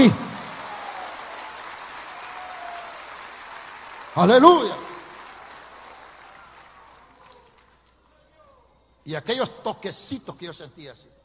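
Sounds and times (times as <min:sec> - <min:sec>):
speech: 0:00.0 - 0:00.2, 0:04.2 - 0:04.8, 0:09.1 - 0:11.2
crowd applauding with many hands clapping: 0:00.0 - 0:08.2.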